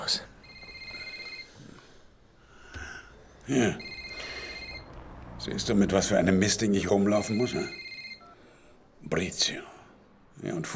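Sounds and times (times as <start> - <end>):
mobile phone ringing with a quiet high electronic ringtone: 0.4 - 1.6, 3.7 - 5.0, 7.0 - 8.5
speech: 3.5 - 3.9, 5.5 - 7.8, 9.1 - 9.7, 10.4 - 10.7.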